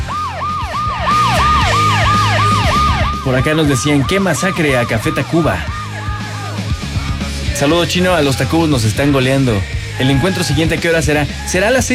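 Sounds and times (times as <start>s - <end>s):
ambulance siren wailing in a fast repeating yelp: 0.0s - 7.2s
speech: 3.3s - 5.8s, 7.6s - 11.9s.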